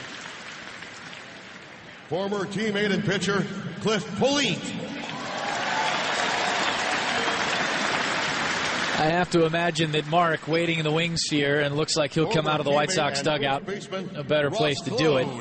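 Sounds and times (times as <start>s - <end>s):
large ballpark stadium crowd applause: 0.0s - 1.9s, 4.8s - 11.6s
speech: 2.1s - 4.9s, 9.0s - 15.3s.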